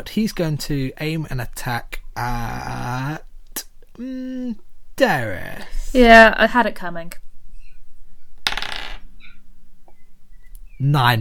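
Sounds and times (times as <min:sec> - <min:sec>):
speech: 0:00.0 - 0:07.2, 0:10.8 - 0:11.1
dice rolled across a hard tabletop: 0:08.4 - 0:09.0.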